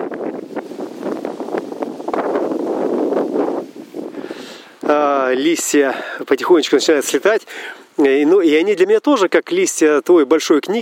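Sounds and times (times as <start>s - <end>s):
wind buffeting the microphone in rough gusts: 0.0s - 5.3s
speech: 5.3s - 10.7s.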